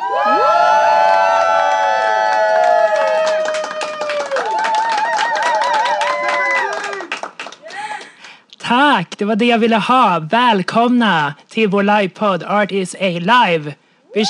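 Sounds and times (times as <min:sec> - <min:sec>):
live audience whooping and cheering: 0:00.0 - 0:07.9, 0:14.1 - 0:14.2
live audience clapping: 0:00.5 - 0:08.4
speech: 0:09.2 - 0:14.2.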